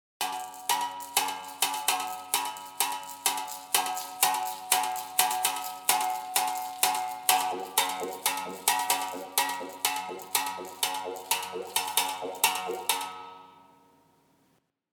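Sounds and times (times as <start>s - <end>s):
birimbao: 0.2s - 13.6s.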